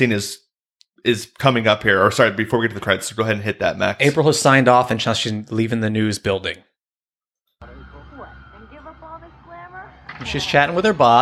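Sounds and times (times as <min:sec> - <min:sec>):
speech: 0:00.0 - 0:00.4, 0:01.0 - 0:06.7, 0:10.2 - 0:11.2
sirens wailing in the city: 0:07.6 - 0:11.2.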